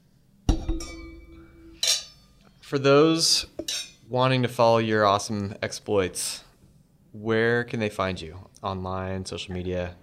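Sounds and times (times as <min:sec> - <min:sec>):
glasses clinking together in a toast: 0:00.6 - 0:02.4, 0:03.6 - 0:04.0
speech: 0:02.7 - 0:06.4, 0:07.1 - 0:10.0.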